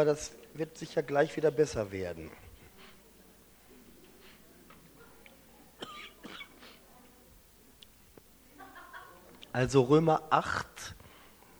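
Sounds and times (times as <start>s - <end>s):
speech: 0.0s - 2.4s, 9.6s - 11.0s
speaker giving a Bible teaching coughing harshly: 5.8s - 6.8s
throat clearing: 5.8s - 6.8s
laughter: 8.1s - 11.5s.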